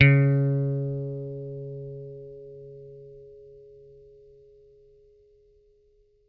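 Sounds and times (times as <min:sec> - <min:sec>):
picked bass note C#3: 0:00.0 - 0:03.2.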